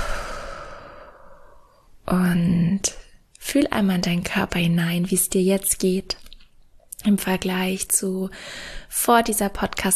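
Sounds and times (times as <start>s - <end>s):
deep breath during a breathing exercise: 0.0s - 1.9s, 8.4s - 8.9s
speech: 2.1s - 6.2s, 7.0s - 9.9s.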